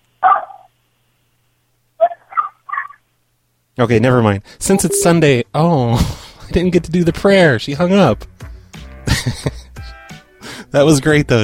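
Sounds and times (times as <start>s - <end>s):
dog barking: 0.2s - 0.7s
speech: 3.8s - 8.4s, 9.2s - 9.5s, 10.7s - 11.4s.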